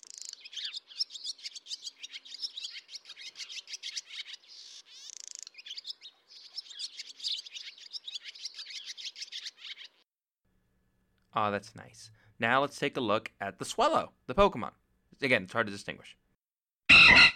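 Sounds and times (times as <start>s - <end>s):
barn swallow twittering with high chirps, squeaky warbles and rattly notes: 0.0s - 10.0s
speech: 11.4s - 16.2s.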